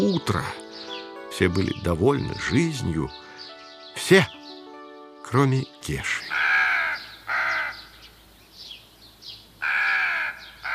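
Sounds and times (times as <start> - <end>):
speech: 0.0 - 3.2, 4.0 - 4.4, 5.3 - 6.3
crow cawing with harsh rasping calls: 6.2 - 8.2, 9.6 - 10.7.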